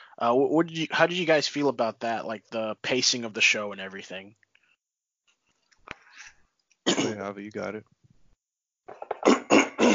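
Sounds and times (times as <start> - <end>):
speech: 0.2 - 4.4, 7.1 - 8.0
person clearing throat: 6.9 - 7.2, 9.0 - 9.9.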